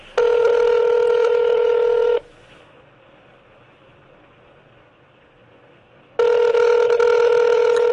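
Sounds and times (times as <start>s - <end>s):
ringback tones on an outgoing phone call: 0.2s - 2.2s, 6.2s - 7.9s.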